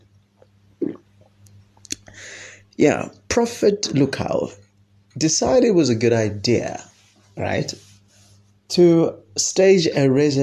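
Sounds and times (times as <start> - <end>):
person sipping and swallowing tea: 0.8 - 1.0
speech: 2.2 - 4.6, 5.2 - 7.8, 8.7 - 10.4.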